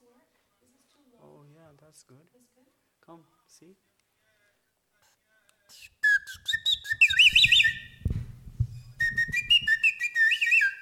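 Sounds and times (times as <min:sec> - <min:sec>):
speech: 0:01.8 - 0:03.9
water bird whistle warbling: 0:06.0 - 0:08.0, 0:08.9 - 0:10.8
soft low thumps: 0:07.3 - 0:09.8.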